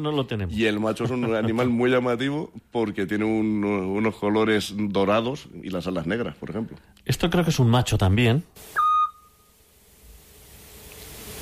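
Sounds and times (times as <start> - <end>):
speech: 0.0 - 8.8
faint hiss: 0.0 - 11.4
Eurasian scops owl whistled note: 8.8 - 9.5.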